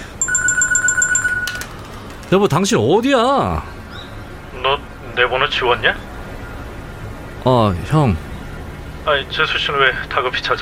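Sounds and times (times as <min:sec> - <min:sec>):
phone ringtone with warbling high pulsing electronic tones: 0:00.0 - 0:01.9
faint noise: 0:00.0 - 0:10.6
speech: 0:02.3 - 0:03.8, 0:04.6 - 0:06.1, 0:07.4 - 0:08.3, 0:09.0 - 0:10.6.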